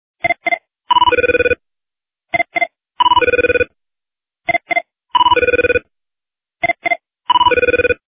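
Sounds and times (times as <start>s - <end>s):
ring tone: 0.3s - 1.6s, 3.0s - 3.7s, 5.2s - 5.8s, 6.6s - 8.0s.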